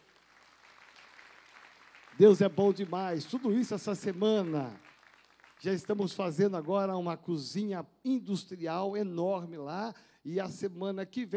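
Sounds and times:
audience applauding: 0.0 - 6.8
speech: 2.2 - 4.9, 5.6 - 11.3.

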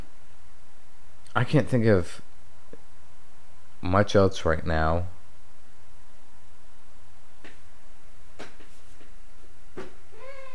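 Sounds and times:
steady low hum: 0.0 - 10.5
speech: 1.4 - 2.3, 3.8 - 5.2
cat meowing: 10.2 - 10.5.

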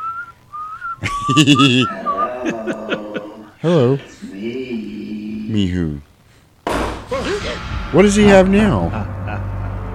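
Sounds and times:
person whistling a thin wavering tune: 0.0 - 1.7
speech: 1.0 - 3.0, 3.6 - 4.8, 5.5 - 6.1, 7.9 - 9.1
laughter: 1.0 - 3.6.

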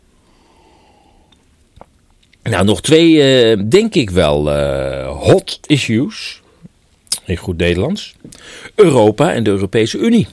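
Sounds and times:
soft breathing: 0.1 - 1.5, 8.3 - 8.8
person sipping a drink: 0.3 - 1.5
speech: 2.5 - 6.4, 7.3 - 10.3.

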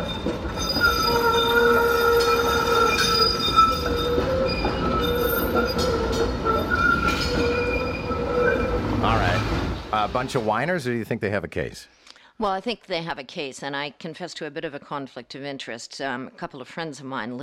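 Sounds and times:
streetcar wheels squealing through a newly built track curve: 0.0 - 10.2
speech: 10.1 - 17.4.

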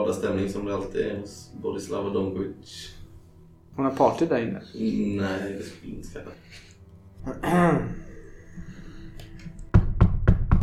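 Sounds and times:
speech: 0.1 - 3.0, 3.8 - 8.8
firm knocks on a door: 9.7 - 10.6.

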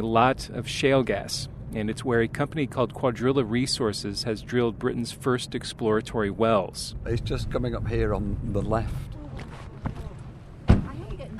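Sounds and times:
speech: 0.0 - 9.2
quiet rustling: 9.0 - 11.3
car door closing as a person climbs out at a shale gas well site: 9.3 - 11.3.

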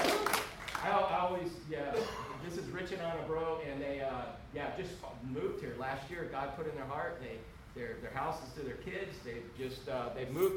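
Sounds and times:
audience applause: 0.0 - 0.8
speech: 1.3 - 10.5.

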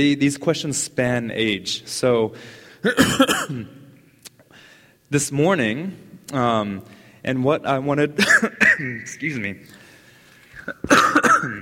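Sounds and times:
speech: 0.0 - 3.8, 5.1 - 9.8, 10.6 - 11.6
person coughing: 2.8 - 3.8, 8.2 - 9.1, 10.6 - 11.6.

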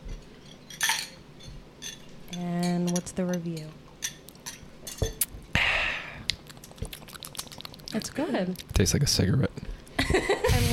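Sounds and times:
glasses clinking in a toast: 0.4 - 5.2
speech: 2.3 - 3.8, 8.0 - 9.5, 10.1 - 10.7.

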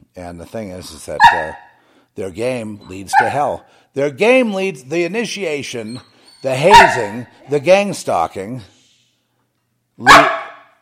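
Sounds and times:
speech: 0.2 - 8.8, 10.0 - 10.4
dog barking: 1.2 - 1.7, 3.1 - 3.5, 6.5 - 7.3, 10.0 - 10.7.

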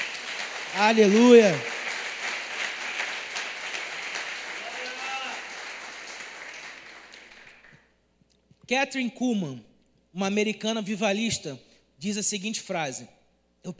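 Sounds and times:
crowd applauding: 0.0 - 7.8
speech: 0.7 - 1.7, 8.7 - 13.7.

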